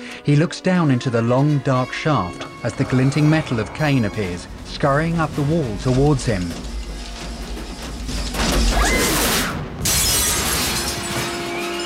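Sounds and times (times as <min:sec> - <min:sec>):
speech: 0:00.2 - 0:06.7
debris crashing: 0:02.4 - 0:11.8
glass roof shattering as two robots burst through: 0:08.0 - 0:11.8.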